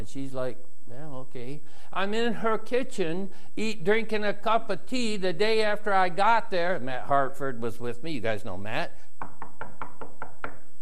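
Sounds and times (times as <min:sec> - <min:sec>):
speech: 0:00.0 - 0:09.3
firm knocks on a door: 0:09.2 - 0:10.6.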